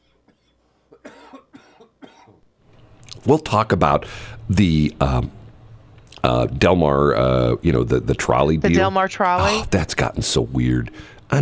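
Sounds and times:
harsh coughs: 0.3s - 2.4s
speech: 3.2s - 5.4s, 6.2s - 11.3s.

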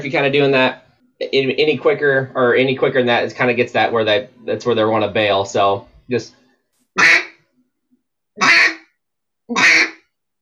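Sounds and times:
speech: 0.0s - 6.4s
duck call blown to imitate duck quacking: 7.0s - 7.4s, 8.4s - 8.9s, 9.5s - 10.0s.

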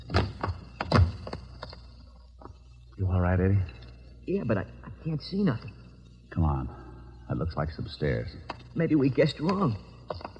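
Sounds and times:
dull wooden knocks and thuds of a basement window being pried open: 0.0s - 1.8s
speech: 3.2s - 10.2s.

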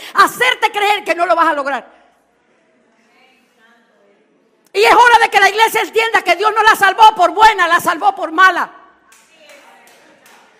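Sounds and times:
speech: 0.2s - 2.0s, 4.8s - 8.8s
lone person clapping in a reverberant room: 9.1s - 10.5s.

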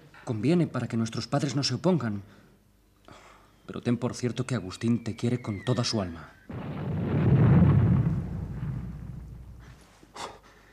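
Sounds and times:
speech: 0.3s - 2.4s, 3.7s - 6.8s
bomb explosion deep booming rumble: 6.5s - 9.8s
sharp crack: 6.5s - 9.8s.

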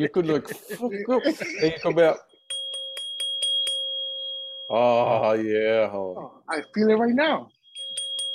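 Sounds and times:
laughter: 0.0s - 2.2s
speech: 0.0s - 2.3s, 4.7s - 7.6s
528 hertz tuning fork ringing: 2.0s - 5.1s, 6.5s - 8.3s
little hammer tapping a 528 hertz tuning fork: 2.4s - 4.7s, 7.6s - 8.3s.

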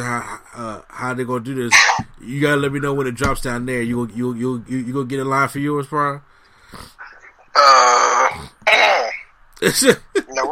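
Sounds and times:
speech: 0.1s - 7.0s, 7.6s - 8.9s, 9.6s - 10.5s
person clearing throat: 7.7s - 9.2s.

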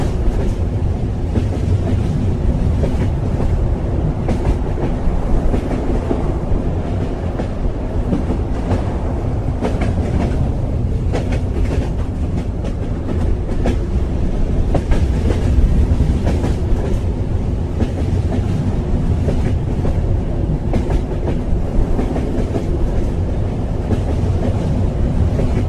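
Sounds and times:
carriage rumble inside a long-distance sleeper train: 0.0s - 25.6s.

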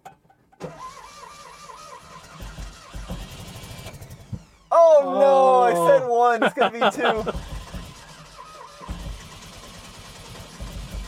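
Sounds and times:
classic Fiat 500 cable-driven pull starter cranking the engine: 0.5s - 4.8s, 7.0s - 11.0s
laughter: 4.8s - 7.6s
speech: 6.2s - 7.5s.

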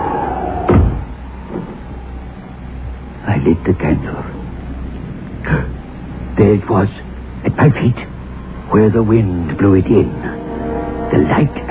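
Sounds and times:
hum: 0.0s - 11.6s
door swinging closed with a firm low thud: 0.7s - 1.8s
speech: 3.4s - 4.3s, 6.4s - 8.1s, 8.7s - 10.3s, 11.1s - 11.6s.

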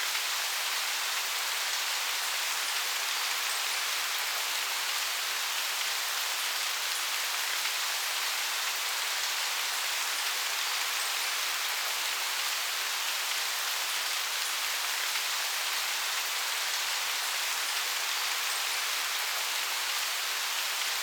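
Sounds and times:
steady dense rain hiss: 0.0s - 21.0s.

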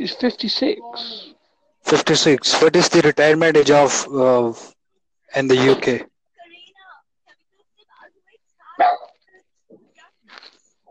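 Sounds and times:
speech: 0.0s - 4.7s, 5.3s - 6.1s
dog barking: 8.8s - 9.2s.

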